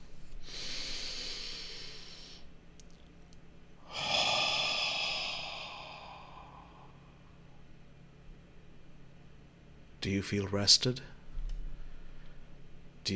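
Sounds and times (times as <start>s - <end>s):
deep breath during a guided relaxation exercise: 0.4s - 2.5s, 3.8s - 7.4s
speech: 10.1s - 11.1s.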